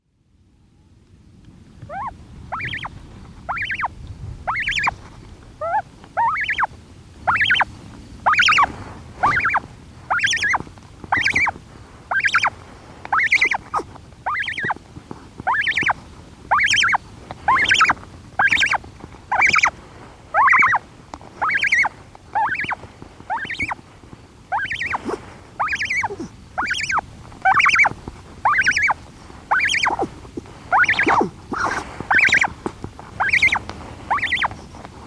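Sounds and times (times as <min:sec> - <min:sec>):
Cory's shearwater chicks calling: 0:01.9 - 0:05.0, 0:05.6 - 0:14.8, 0:15.4 - 0:23.9, 0:24.5 - 0:34.7.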